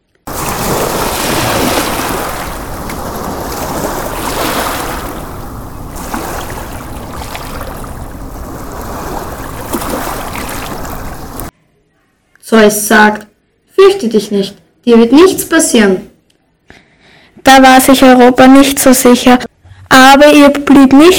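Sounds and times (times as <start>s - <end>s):
sea water churning and splashing with surging waves: 0.3s - 11.5s
speech: 12.5s - 16.1s, 17.4s - 21.1s.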